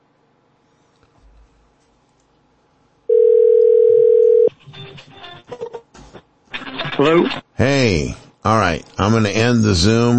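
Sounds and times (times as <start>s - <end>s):
telephone dialing tone as a phone call is placed: 3.1s - 4.5s
speech: 7.0s - 10.1s.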